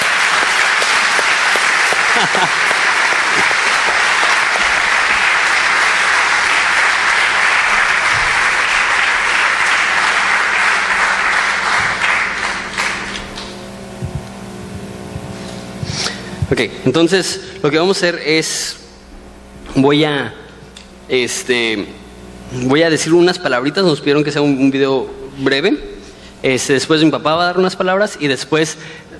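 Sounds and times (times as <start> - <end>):
large church audience applauding: 0.0 - 14.2
faint tone humming: 0.0 - 29.1
laughter: 0.6 - 12.4
speech: 2.2 - 2.8, 16.5 - 18.8, 19.8 - 20.4, 21.1 - 29.1.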